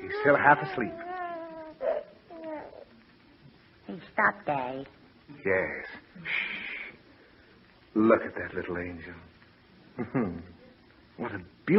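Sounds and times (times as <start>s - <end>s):
baby crying: 0.0s - 3.0s
speech: 0.2s - 1.1s, 3.9s - 6.6s, 7.9s - 9.3s, 10.0s - 10.6s, 11.2s - 11.7s
laughter: 10.0s - 10.5s.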